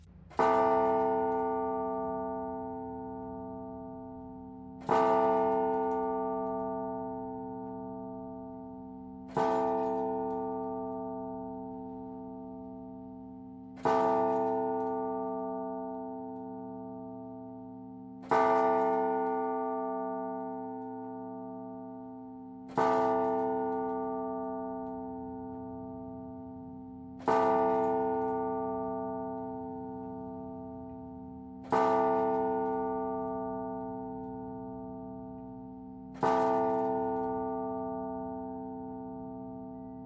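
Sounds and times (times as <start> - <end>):
deep clock bell striking midnight: 0.3 - 40.0.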